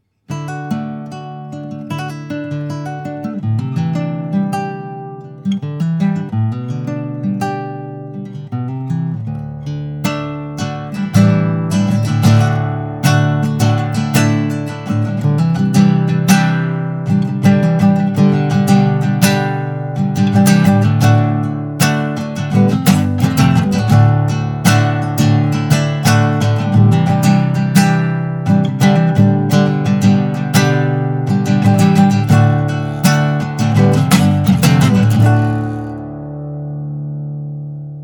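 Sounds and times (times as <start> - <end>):
vintage prewar guitar: 0.0 - 38.0.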